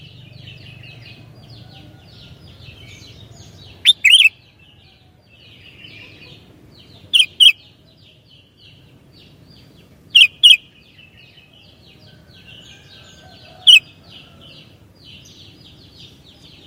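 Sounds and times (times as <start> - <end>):
birds twittering: 0.0 - 16.6
sooty-headed bulbul chirping: 3.6 - 4.4, 7.1 - 7.7, 10.1 - 10.7.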